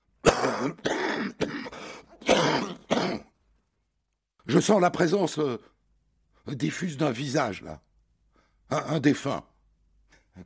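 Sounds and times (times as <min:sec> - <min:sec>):
throat clearing: 0:00.2 - 0:03.3
harsh chesty coughing: 0:00.2 - 0:03.4
speech: 0:00.6 - 0:01.4, 0:04.5 - 0:05.7, 0:06.4 - 0:07.9, 0:08.7 - 0:09.5.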